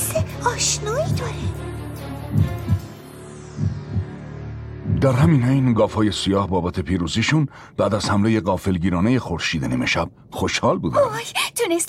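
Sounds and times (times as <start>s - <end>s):
low thudding heartbeat: 0.0s - 3.0s, 3.6s - 5.3s
speech: 0.5s - 1.7s, 5.0s - 11.8s.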